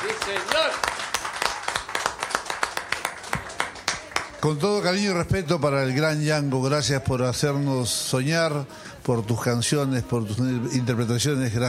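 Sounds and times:
small audience hand clapping: 0.0s - 4.5s
speech: 4.4s - 11.6s.

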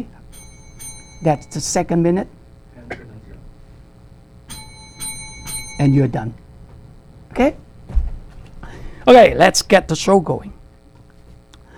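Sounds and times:
countdown timer bell at a candidates' forum: 0.0s - 2.4s, 4.5s - 6.5s
speech: 1.2s - 2.4s, 5.8s - 6.4s, 7.4s - 7.6s, 9.0s - 10.6s.

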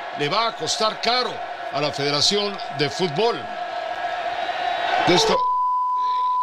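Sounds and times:
loud roaring stadium crowd: 0.0s - 5.5s
speech: 0.2s - 3.6s, 5.1s - 5.5s
steady high censor bleep: 5.5s - 6.4s.

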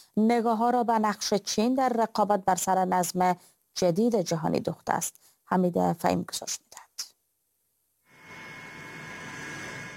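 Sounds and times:
speech: 0.2s - 6.8s
jet airplane engine roar during landing: 8.2s - 9.9s.

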